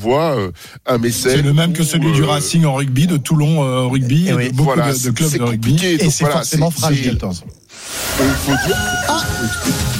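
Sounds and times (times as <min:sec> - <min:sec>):
speech: 0:00.0 - 0:09.9
rooster crowing: 0:08.2 - 0:09.9.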